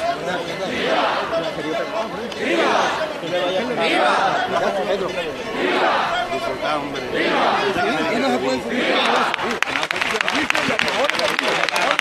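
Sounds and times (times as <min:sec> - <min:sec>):
excited outdoor crowd chatter: 0:00.0 - 0:11.9
large outdoor crowd cheering and applauding for ox carts: 0:09.0 - 0:11.9.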